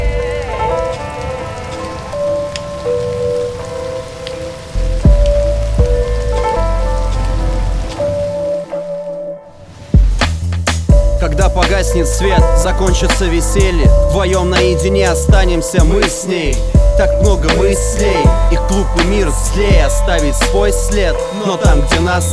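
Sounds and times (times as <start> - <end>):
steady rain pattering on a surface: 0.0 - 22.3
sustained musical tones: 0.0 - 22.3
low thuds: 4.8 - 8.1, 9.9 - 22.3
speech: 12.0 - 22.3.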